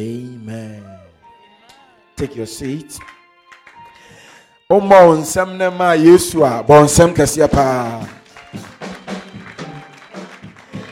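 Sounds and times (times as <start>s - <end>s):
speech: 2.2s - 3.2s, 4.7s - 8.7s
crowd clapping hands in a rhythmic beat: 2.6s - 4.6s, 7.0s - 10.8s.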